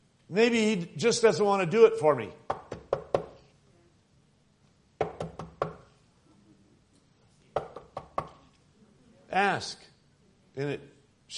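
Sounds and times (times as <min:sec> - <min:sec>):
speech: 0:00.3 - 0:02.6, 0:09.6 - 0:09.8, 0:10.6 - 0:11.3
sharp knocking on a door: 0:02.5 - 0:03.4, 0:05.0 - 0:05.9, 0:07.6 - 0:08.4.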